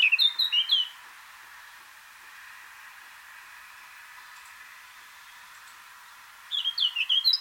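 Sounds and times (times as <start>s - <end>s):
Eurasian blackcap Sylvia atricapilla song: 0.0s - 2.0s, 3.7s - 7.4s.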